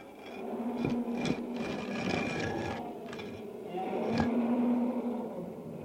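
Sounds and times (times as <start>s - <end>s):
heavy stone being moved onto the mouth of a den: 0.0s - 4.3s
lions roaring and growling in a lions' den: 0.0s - 5.7s.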